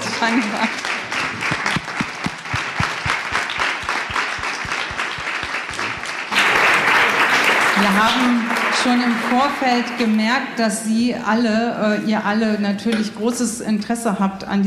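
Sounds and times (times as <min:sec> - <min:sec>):
audience applauding: 0:00.0 - 0:10.1
speech: 0:00.2 - 0:00.9, 0:08.0 - 0:14.6
steady rhythmic thumping beneath the clapping: 0:01.2 - 0:06.3.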